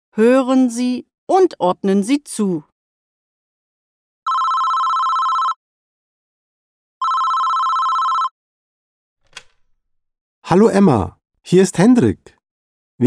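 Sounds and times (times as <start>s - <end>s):
speech: 0.2s - 2.7s, 10.5s - 12.4s
telephone ringing: 4.3s - 5.6s, 7.0s - 8.4s
short clattering noise: 9.3s - 9.8s.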